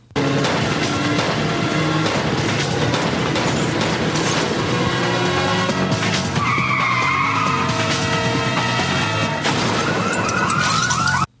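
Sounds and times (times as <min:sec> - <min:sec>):
car engines roaring during a car chase: 0:00.1 - 0:10.6
car tires screeching and skidding during a 180 spin: 0:00.4 - 0:11.3
siren wailing: 0:04.8 - 0:11.3.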